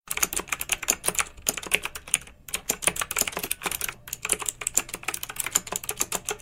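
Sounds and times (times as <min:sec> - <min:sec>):
keyboard typing: 0:00.1 - 0:06.4.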